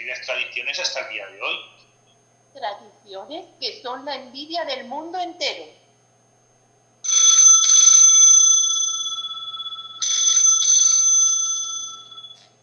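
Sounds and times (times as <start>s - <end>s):
speech: 0.0s - 1.8s, 2.6s - 5.8s
old-style telephone bell ringing: 7.0s - 12.6s.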